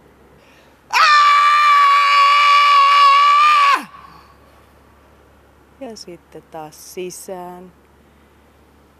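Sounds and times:
person screaming to release stress: 0.9s - 4.1s
speech: 6.0s - 7.8s.

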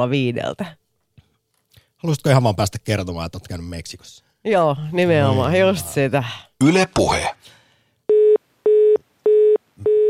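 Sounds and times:
speech: 0.0s - 0.8s, 2.0s - 7.6s
telephone line tone beeps in a radio producer's booth: 8.1s - 10.0s.

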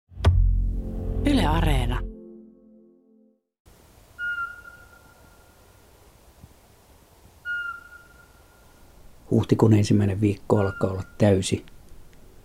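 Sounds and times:
brief low tonal sound: 0.3s - 3.4s
speech: 1.5s - 2.1s, 9.4s - 11.8s
quiet hissy background: 3.7s - 12.4s
male Eurasian pygmy owl whistling call from a yard in early April: 4.2s - 5.5s, 7.4s - 8.6s.

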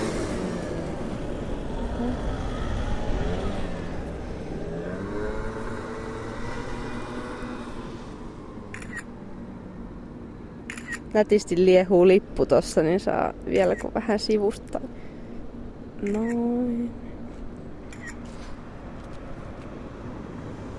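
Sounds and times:
moped engine starting and revving with a buzzing drone: 0.0s - 7.9s
speech: 2.0s - 2.4s, 11.2s - 15.0s, 16.0s - 17.0s.

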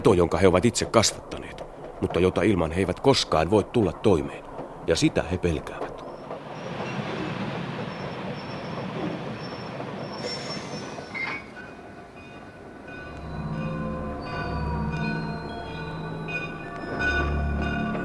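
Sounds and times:
speech: 0.0s - 5.9s
heavy rhythmic clatter over the rail joints: 0.0s - 13.2s
train rumbling past: 0.0s - 18.0s
train wheels squealing in high metallic tones: 0.5s - 18.0s.

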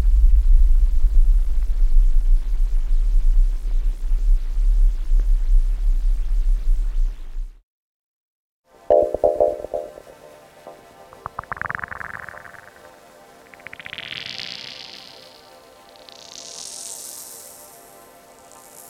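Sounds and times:
dense steady low rumble: 0.0s - 7.4s.

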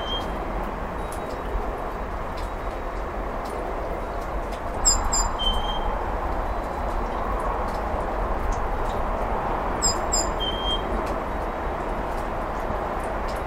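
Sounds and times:
great tit singing spring song softly in a home yard: 0.0s - 0.4s, 4.8s - 5.9s, 9.8s - 10.8s
low hum and rushing noise: 0.0s - 13.4s.

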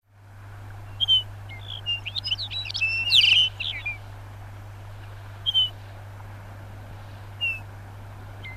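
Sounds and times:
steady low hum: 0.1s - 8.5s
Lapland bunting song twittering: 0.8s - 4.1s, 5.4s - 5.8s, 7.4s - 7.7s, 8.4s - 8.5s.

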